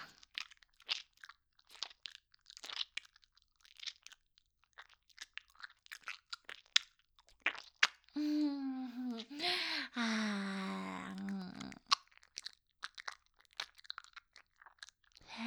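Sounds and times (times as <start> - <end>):
crunchy chewing: 0.0 - 8.1, 11.1 - 15.2
drawn-out wavering vocal sound: 8.2 - 11.8.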